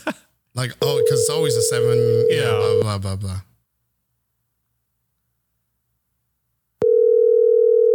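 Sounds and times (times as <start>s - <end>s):
speech: 0.6s - 3.5s
phone call ringing tone, steady loud electronic hum: 0.8s - 3.0s, 6.8s - 7.9s.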